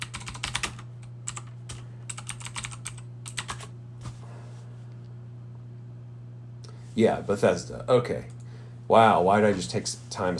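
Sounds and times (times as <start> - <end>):
typing on a computer keyboard: 0.0 - 3.7
steady low electrical hum: 0.0 - 10.3
speech: 7.0 - 10.3.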